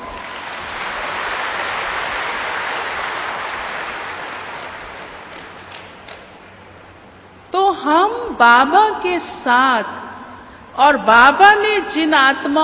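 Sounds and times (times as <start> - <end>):
audience clapping: 0.0 - 6.4
speech: 7.8 - 10.0, 10.8 - 12.6.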